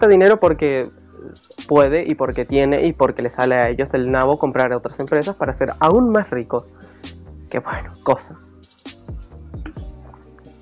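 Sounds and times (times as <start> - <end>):
speech: 0.0 - 8.5
person swallowing water from a bottle: 9.6 - 10.6.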